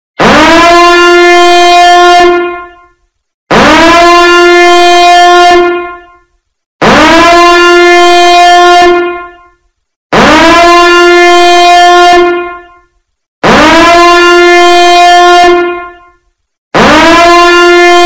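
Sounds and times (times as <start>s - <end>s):
loud warning alarm: 0.2s - 18.0s.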